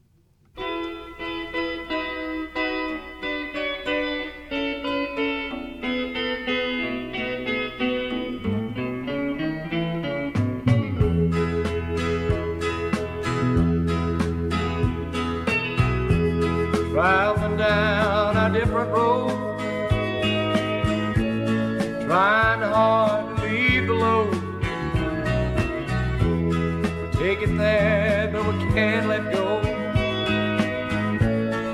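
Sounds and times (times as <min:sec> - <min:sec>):
band playing a 1971 song by a singer-songwriter: 0:00.6 - 0:31.7
person singing with wavering held notes: 0:16.8 - 0:19.6, 0:22.0 - 0:25.9, 0:27.2 - 0:30.6.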